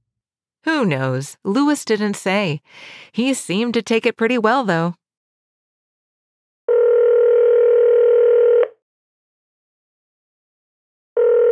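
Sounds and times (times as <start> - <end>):
speech: 0.6 - 5.0
telephone electronic ring tone in an office: 6.7 - 8.7, 11.2 - 11.4.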